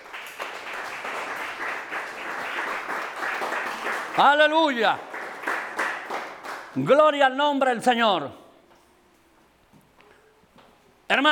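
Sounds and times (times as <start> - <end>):
crowd applauding: 0.0 - 6.9
speech: 4.2 - 5.1, 6.8 - 8.4.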